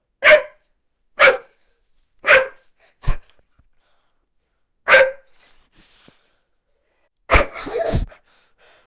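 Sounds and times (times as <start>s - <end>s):
sudden aggressive dog bark: 0.2s - 0.6s, 1.2s - 1.5s, 2.2s - 3.2s, 4.9s - 5.3s, 7.3s - 7.9s.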